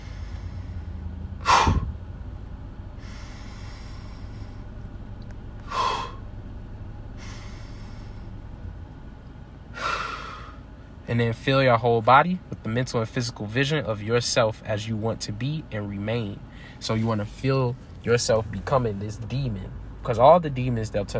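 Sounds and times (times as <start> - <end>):
slow drawn-out inhales: 0.0 - 1.9, 3.0 - 4.8, 5.6 - 6.3, 7.2 - 8.5, 9.7 - 10.7, 16.5 - 16.8
sharp forceful exhales: 0.0 - 2.0, 3.0 - 4.8, 5.6 - 6.3, 7.2 - 8.4, 9.7 - 10.7
speech: 11.1 - 21.1.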